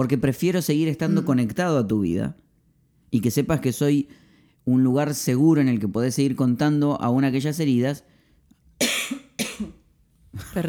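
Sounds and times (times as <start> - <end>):
speech: 0.0 - 2.4, 3.1 - 8.1
woman coughing: 8.8 - 9.8.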